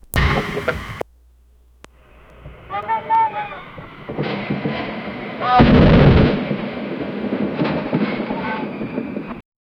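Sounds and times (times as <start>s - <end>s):
helicopter rotors pounding: 0.2s - 1.0s, 2.0s - 9.4s.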